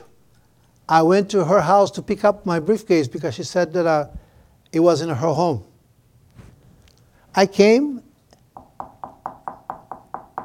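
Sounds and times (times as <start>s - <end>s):
speech: 0.9s - 5.7s, 7.4s - 8.0s
firm knocks on a door: 8.6s - 10.4s.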